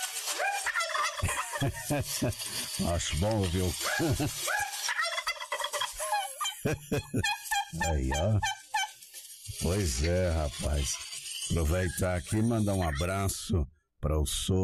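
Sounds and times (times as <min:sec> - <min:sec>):
turkeys gobbling in warbling bursts: 0:00.4 - 0:01.7, 0:03.9 - 0:09.0
laughter: 0:01.0 - 0:04.9, 0:05.5 - 0:08.4
speech: 0:01.6 - 0:04.7, 0:06.6 - 0:08.6, 0:09.5 - 0:14.6.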